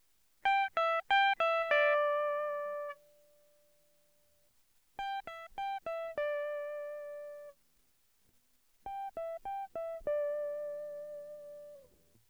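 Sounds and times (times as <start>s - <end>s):
guitar tone: 0.5s - 3.2s, 5.0s - 7.5s, 8.9s - 11.9s.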